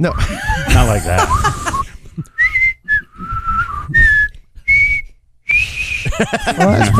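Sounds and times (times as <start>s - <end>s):
speech: 0.0s - 2.3s, 6.2s - 6.9s
laughter: 0.2s - 2.0s, 6.1s - 6.9s
person whistling a short wavering tune: 1.3s - 6.1s.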